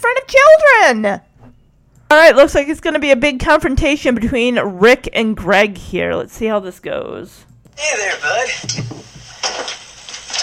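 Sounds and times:
speech: 0.1s - 1.3s, 2.1s - 9.8s
wooden chair clattering against the floor: 8.6s - 10.4s.

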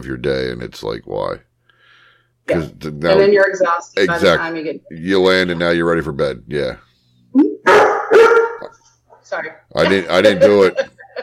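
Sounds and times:
speech: 0.0s - 1.5s, 2.5s - 8.0s, 9.3s - 11.2s
puppy barking at the door: 7.6s - 8.8s
laughter: 9.8s - 11.2s.

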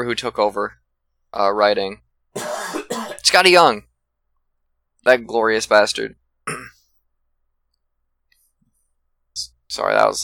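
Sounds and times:
speech: 0.0s - 2.5s, 3.3s - 3.9s, 5.0s - 6.6s, 9.4s - 10.2s
single sharp cough: 2.4s - 3.2s, 6.5s - 6.8s.

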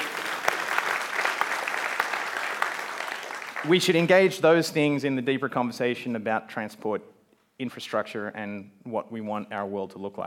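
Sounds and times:
audience applause: 0.0s - 3.8s
speech: 3.6s - 10.2s.

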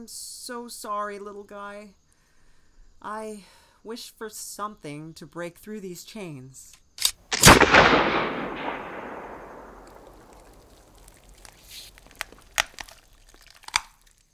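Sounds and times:
speech: 0.0s - 2.0s, 3.0s - 6.8s
faint sharp cracks: 7.0s - 14.1s
video game gunshot fired at a rabbit: 7.3s - 12.8s.

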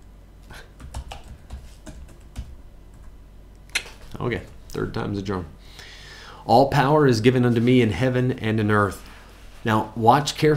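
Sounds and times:
typing on a computer keyboard: 0.8s - 3.2s
speech: 4.2s - 5.8s, 6.4s - 10.5s.

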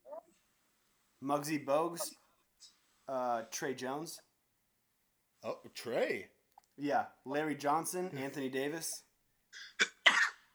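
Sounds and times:
speech: 1.2s - 4.3s, 5.4s - 9.8s
sneeze: 9.6s - 10.4s.

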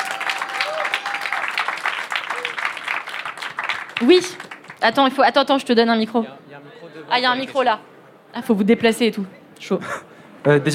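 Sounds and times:
faint whistles and cheers: 0.0s - 1.5s
audience at a masterclass applauding: 0.0s - 4.8s
speech: 4.0s - 10.7s.

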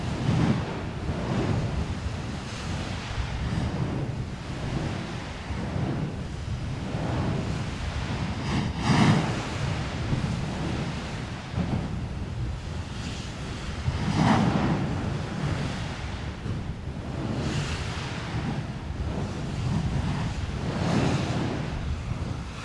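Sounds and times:
lava bombs bursting with sharp crackling splashes: 0.0s - 22.6s
volcano roaring with deep rumble of venting gas: 0.0s - 22.6s
wind buffeting the microphone: 0.0s - 22.6s.

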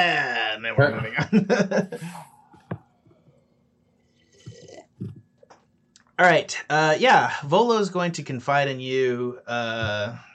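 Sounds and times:
speech: 0.0s - 2.3s, 6.2s - 10.3s
laughter: 0.8s - 2.3s
slurping and swallowing a hot drink like coffee: 4.1s - 5.2s.

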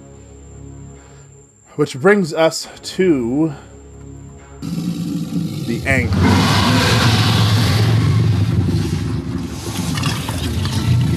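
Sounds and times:
speech: 1.8s - 3.7s, 5.8s - 7.2s
deep rumbling bestial monster roar: 4.6s - 11.1s.

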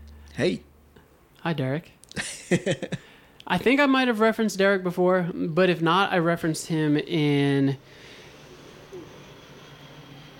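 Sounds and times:
speech: 0.4s - 0.7s, 1.4s - 8.0s
laughter: 2.2s - 3.1s
airplane roar passing overhead: 7.8s - 10.3s.

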